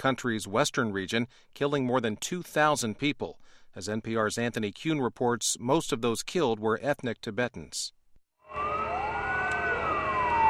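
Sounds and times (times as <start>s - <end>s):
speech: 0.0s - 8.7s
sirens wailing in mourning for earthquake victims in Yushu Prefecture, China: 8.5s - 10.4s.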